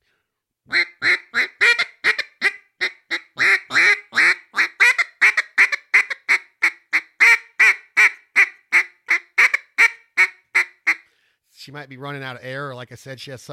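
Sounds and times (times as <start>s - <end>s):
imitated bouncing hen turkey call with raspy yelps: 0.7s - 11.0s
speech: 11.7s - 13.5s.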